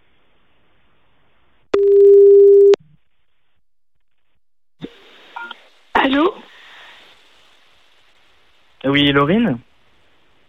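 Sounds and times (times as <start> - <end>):
outgoing telephone call ring tone: 1.8 - 2.8
speech: 8.8 - 9.7.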